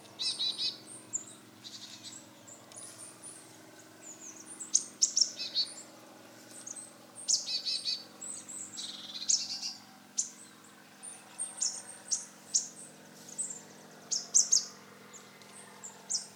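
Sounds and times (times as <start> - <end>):
low steady background hum: 0.0 - 16.3
marsh tit Poecile palustris calling high thin chirps: 0.2 - 3.4, 4.0 - 5.8, 6.6 - 16.3.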